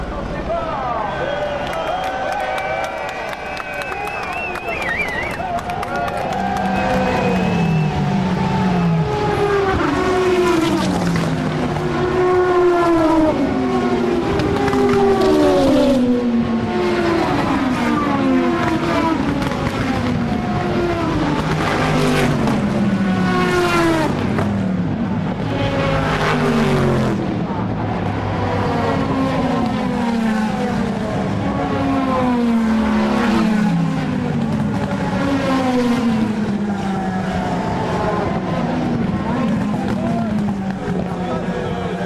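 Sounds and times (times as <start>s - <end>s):
race car engines revving at the start of a race: 0.0s - 42.0s
crowd of spectators cheering: 0.1s - 9.9s, 34.1s - 42.0s.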